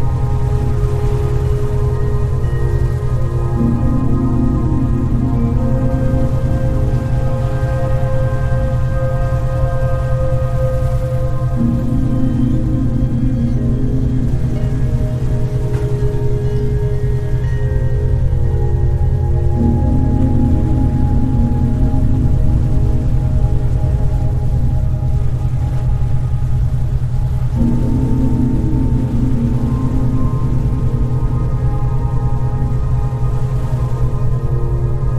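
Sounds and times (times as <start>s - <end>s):
pink and brown noise with low rumbling: 0.0s - 35.1s
sustained binaural beat tones: 0.0s - 35.1s.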